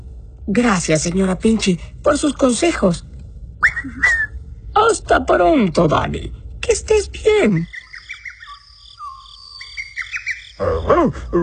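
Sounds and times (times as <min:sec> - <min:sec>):
faint insect-like hum: 0:00.0 - 0:11.4
speech: 0:00.5 - 0:04.2, 0:04.8 - 0:07.8, 0:10.6 - 0:11.4
bird chirping: 0:07.5 - 0:11.4.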